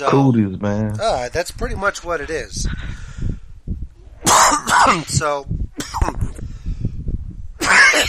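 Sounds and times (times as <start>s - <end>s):
speech: 0.0s - 3.2s, 4.8s - 6.4s
person coughing roughly and phlegmily: 4.3s - 5.2s, 5.8s - 6.4s, 7.6s - 8.0s.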